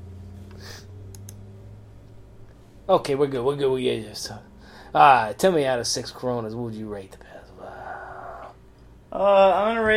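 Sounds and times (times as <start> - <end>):
steady low electrical hum: 0.0 - 9.9
soft clicks from a computer mouse or keys: 1.1 - 1.4
speech: 2.9 - 7.4, 9.1 - 9.9.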